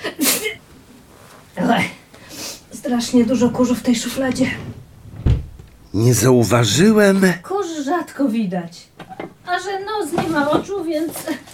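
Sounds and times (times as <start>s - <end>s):
woman sneezing: 0.0s - 0.6s
speech: 2.9s - 4.8s, 6.0s - 8.9s, 9.5s - 11.5s.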